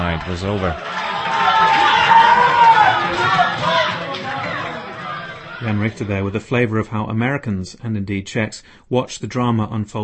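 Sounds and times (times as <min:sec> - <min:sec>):
dense crowd roaring and cheering: 0:00.0 - 0:06.4
speech: 0:00.2 - 0:01.0, 0:05.6 - 0:10.0.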